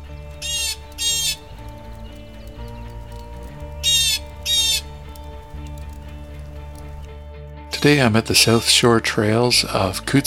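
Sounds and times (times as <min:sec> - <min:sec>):
blue jay giving harsh raspy calls: 0:00.0 - 0:07.1
low steady hum: 0:00.0 - 0:08.8
speech: 0:07.8 - 0:10.2.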